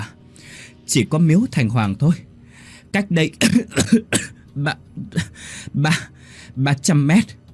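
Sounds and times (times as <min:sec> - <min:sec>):
speech: 0:00.9 - 0:02.3, 0:02.9 - 0:07.4
old woman coughing violently: 0:03.4 - 0:04.4.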